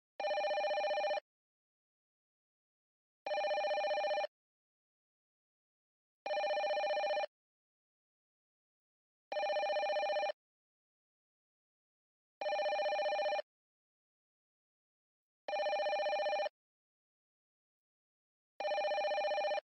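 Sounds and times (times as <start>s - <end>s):
phone ringing: 0.2s - 1.2s, 3.3s - 4.3s, 6.3s - 7.3s, 9.3s - 10.4s, 12.4s - 13.5s, 15.5s - 16.5s, 18.6s - 19.6s.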